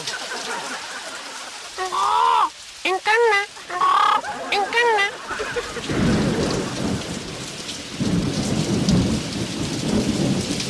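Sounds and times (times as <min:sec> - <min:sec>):
laughter: 0:00.0 - 0:07.1
summer rain hissing in Palma de Mallorca: 0:00.0 - 0:10.6
speech: 0:02.8 - 0:06.2
deep rolling thunder of a summer thunderstorm in Palma de Mallorca: 0:05.2 - 0:10.6.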